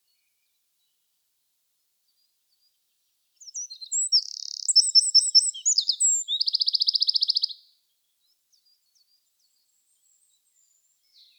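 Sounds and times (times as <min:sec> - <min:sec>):
Eurasian wren Troglodytes troglodytes singing: 0:03.4 - 0:11.3.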